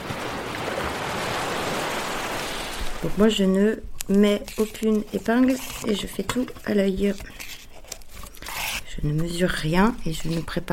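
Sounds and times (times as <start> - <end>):
ocean waves and lapping water: 0.0 - 3.6
speech: 3.0 - 7.4, 9.0 - 10.7.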